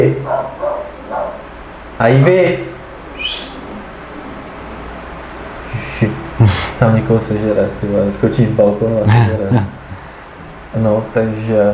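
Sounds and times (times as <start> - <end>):
faint low hum: 0.0 - 11.7
dog barking short sharp woofs: 0.1 - 1.6
speech: 2.0 - 2.7, 6.5 - 9.8, 10.7 - 11.7
laughter: 9.0 - 9.9.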